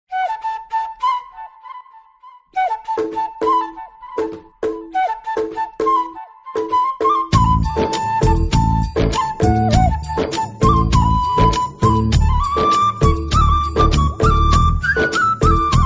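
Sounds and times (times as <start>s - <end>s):
classical flute: 0.1s - 15.8s.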